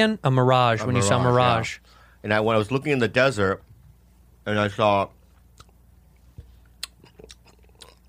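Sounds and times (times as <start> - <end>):
speech: 0.0 - 3.7, 4.4 - 5.2
chewing candy corn against the microphone: 6.8 - 8.0.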